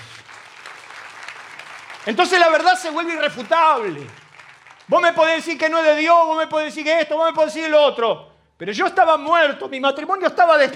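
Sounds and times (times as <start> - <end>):
crowd applauding: 0.0 - 5.9
speech: 2.0 - 4.2, 4.9 - 10.7.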